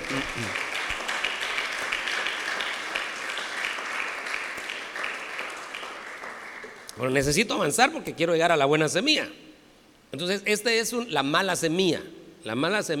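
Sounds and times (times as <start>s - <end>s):
sustained applause from a crowd: 0.0s - 6.9s
speech: 0.1s - 0.7s, 7.0s - 9.4s, 10.1s - 12.9s.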